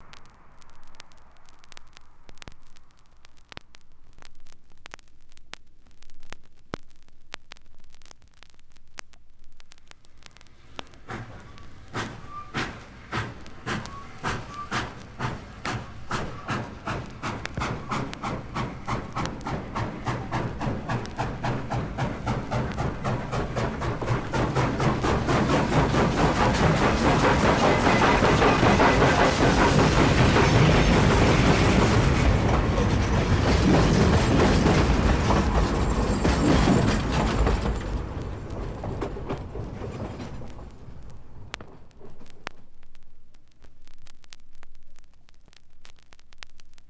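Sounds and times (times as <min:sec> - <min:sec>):
steam engine of a short train: 0:10.6 - 0:41.4.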